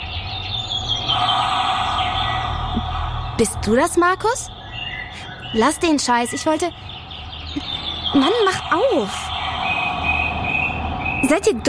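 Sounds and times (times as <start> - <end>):
birds chirping heard through an intercom: 0.0 - 11.6
low hum: 0.6 - 6.5, 7.3 - 11.6
speech: 3.4 - 4.6, 5.5 - 6.9, 7.6 - 9.3, 11.2 - 11.6.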